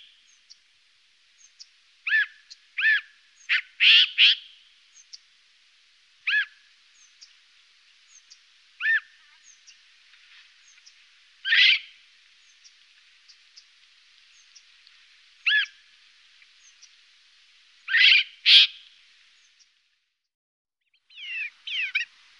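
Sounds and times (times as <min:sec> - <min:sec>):
Siberian jay calling: 0:02.1 - 0:04.5, 0:06.3 - 0:06.6, 0:08.8 - 0:09.5, 0:11.5 - 0:11.9, 0:15.5 - 0:15.8, 0:17.9 - 0:18.8, 0:21.1 - 0:22.1.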